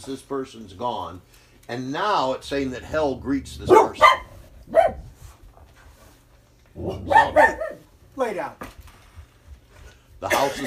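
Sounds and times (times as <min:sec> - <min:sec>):
speech: 0:00.0 - 0:05.0, 0:06.8 - 0:08.7, 0:10.2 - 0:10.6
dog barking: 0:03.6 - 0:05.1, 0:06.8 - 0:07.8.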